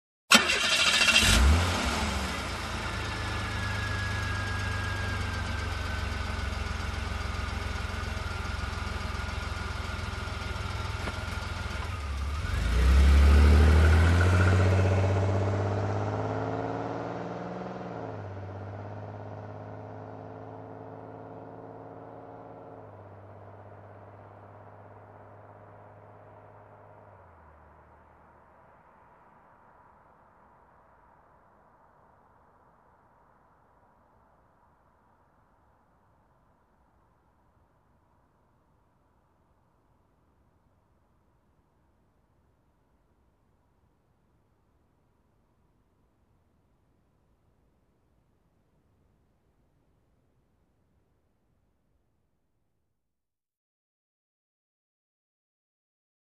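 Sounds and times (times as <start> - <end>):
muscle car engine ignition: 0.3 - 27.3.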